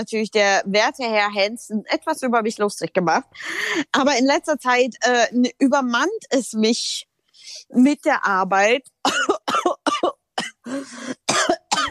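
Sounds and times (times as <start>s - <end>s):
speech: 0.0s - 9.4s, 10.6s - 11.2s
person coughing harshly: 9.1s - 11.9s.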